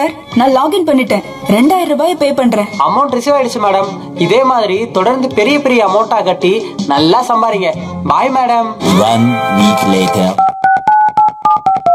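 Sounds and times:
speech: 0:00.0 - 0:10.5
phone keypad beeps while dialing a number: 0:10.4 - 0:11.9.

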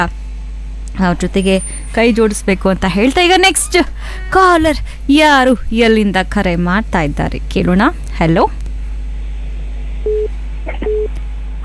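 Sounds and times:
speech: 0:00.0 - 0:00.2, 0:00.9 - 0:08.6
constant low telephone line hum: 0:00.0 - 0:11.6
telephone line tone beeps after a dropped call: 0:10.1 - 0:11.1.

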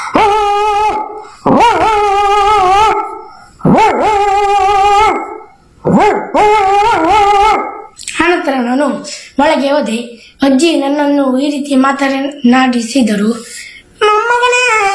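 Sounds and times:
pet dog barking with howling calls: 0:00.0 - 0:08.0
speech: 0:09.6 - 0:14.8.

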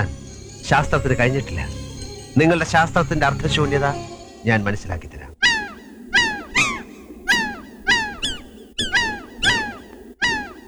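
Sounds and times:
speech: 0:00.0 - 0:01.8, 0:02.4 - 0:05.3
low rumbling background: 0:00.0 - 0:05.4
bird chirping: 0:00.0 - 0:10.6.

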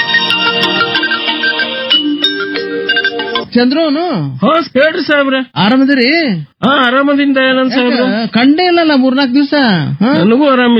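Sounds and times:
telephone ringing tone on an outgoing call: 0:00.0 - 0:03.5
speech: 0:03.6 - 0:10.7.

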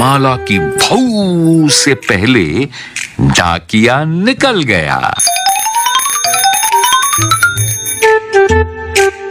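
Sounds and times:
speech: 0:00.0 - 0:05.6, 0:07.2 - 0:09.2
silver anklet bells jingling: 0:05.2 - 0:08.2.

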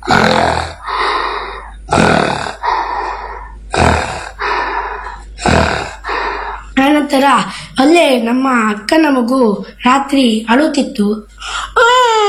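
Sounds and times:
voice imitating an old man snoring in his sleep: 0:00.0 - 0:06.7
speech: 0:07.3 - 0:12.2.

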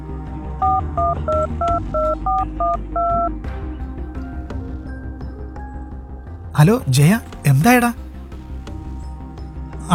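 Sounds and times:
phone number dialed on touch-tone keys: 0:00.6 - 0:03.3
speech: 0:06.6 - 0:08.0.

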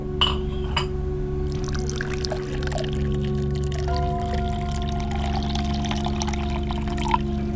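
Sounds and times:
low constant hum: 0:00.0 - 0:07.5
water pouring in a steady stream: 0:01.5 - 0:07.5.

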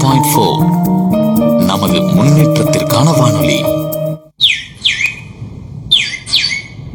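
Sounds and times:
speech: 0:00.1 - 0:01.0, 0:01.8 - 0:03.8
sparrow chirping: 0:04.4 - 0:05.3, 0:05.9 - 0:06.8.

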